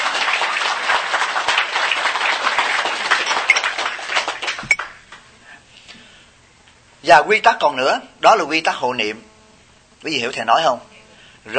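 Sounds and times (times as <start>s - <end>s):
audience crowd applauding: 0.0s - 5.0s
speech: 7.1s - 9.3s, 10.0s - 11.5s.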